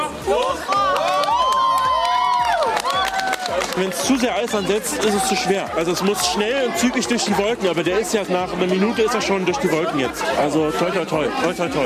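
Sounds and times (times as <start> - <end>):
students clapping: 0.0 - 6.4
school students cheering and whooping at a helium balloon launch: 0.2 - 6.7
speech: 3.8 - 11.8.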